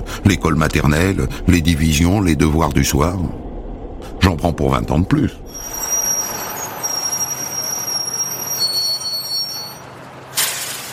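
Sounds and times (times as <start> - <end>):
train rumbling and hissing at a railway station platform: 0.0 - 10.9
speech: 0.2 - 3.4, 4.3 - 5.4
thin high squealing tones of a train: 5.4 - 10.0.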